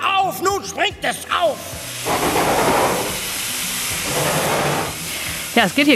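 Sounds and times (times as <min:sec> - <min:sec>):
speech: 0:00.7 - 0:02.4, 0:05.6 - 0:05.9
steam locomotive hissing out steam: 0:00.7 - 0:05.9.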